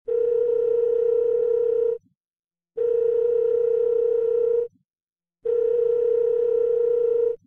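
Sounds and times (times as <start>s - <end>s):
phone ringing: 0.1s - 2.0s, 2.8s - 4.7s, 5.4s - 7.4s.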